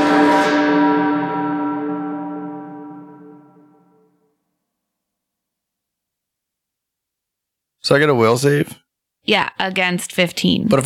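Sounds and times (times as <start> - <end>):
single deep bell struck: 0.0 - 4.1
speech: 7.9 - 10.8.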